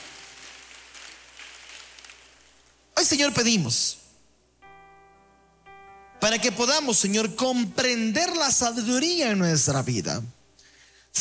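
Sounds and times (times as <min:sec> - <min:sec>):
church congregation applauding during a worship service: 0:00.0 - 0:02.8
speech: 0:03.1 - 0:04.0, 0:06.2 - 0:10.4.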